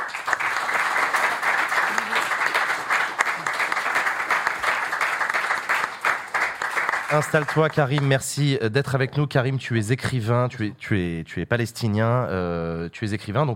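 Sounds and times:
applause from a large audience welcoming a guest: 0.0s - 8.3s
speech: 7.1s - 13.5s.

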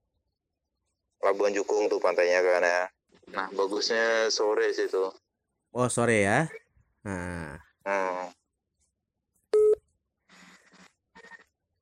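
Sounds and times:
speech: 1.2s - 8.4s
phone charger connection alert chime: 9.6s - 9.8s.

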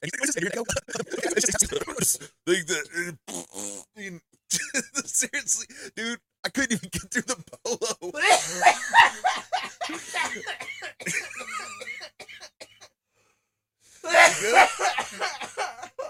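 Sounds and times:
speech: 0.0s - 8.6s
person laughing: 0.1s - 2.4s, 4.5s - 5.9s, 6.6s - 11.8s, 14.1s - 16.0s
person coughing after inhaling from a vape: 0.6s - 2.4s, 8.2s - 8.8s, 9.8s - 12.8s, 14.1s - 16.0s.

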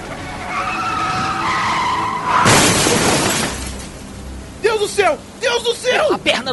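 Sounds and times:
car tires screeching in a hard braking skid: 0.0s - 5.2s
crashing shattering noise: 2.3s - 4.0s
speech: 5.0s - 6.5s.

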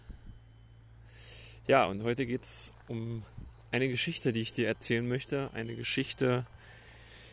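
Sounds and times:
cowbells on cows clanking in an Alpine pasture in Tirol: 0.0s - 7.3s
low outdoor hum: 0.0s - 7.3s
speech: 1.7s - 6.6s.

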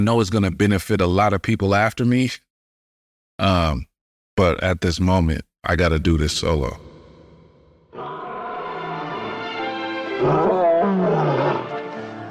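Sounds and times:
speech: 0.0s - 2.4s, 3.4s - 6.9s
juvenile lion roaring: 8.0s - 11.8s.

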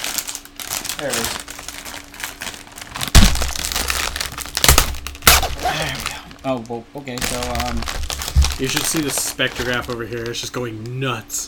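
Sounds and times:
plastic package of cookies crinkling as a pull tab is torn open: 0.0s - 11.2s
speech: 1.0s - 1.5s, 6.4s - 11.4s.

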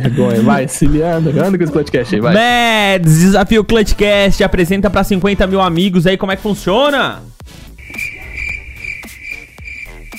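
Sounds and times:
speech: 0.0s - 8.1s
crickets chirping: 7.8s - 10.1s.

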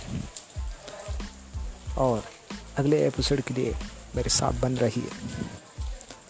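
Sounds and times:
rain falling outdoors: 0.0s - 6.2s
speech: 2.0s - 5.6s.

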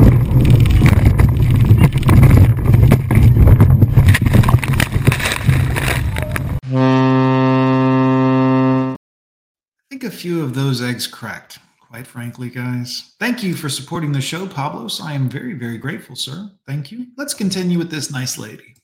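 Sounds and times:
boat thumping and clattering as it bounces along: 0.0s - 6.6s
boat engine roaring while driven roughly: 5.7s - 9.0s
horn blast: 6.6s - 9.0s
speech: 10.1s - 18.8s.

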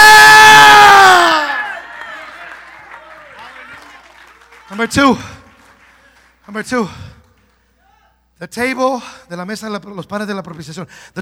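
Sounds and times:
single sharp high shout: 0.0s - 2.0s, 7.8s - 8.2s
crowd screaming and cheering: 0.0s - 4.8s
speech: 4.8s - 5.3s, 6.5s - 7.1s, 8.4s - 11.2s.

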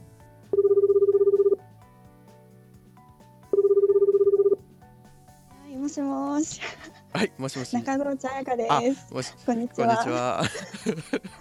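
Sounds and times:
soft music: 0.0s - 11.3s
phone ringback tone as a call connects: 0.5s - 1.6s, 3.5s - 4.7s
speech: 6.0s - 11.3s
laughter: 9.9s - 11.3s.

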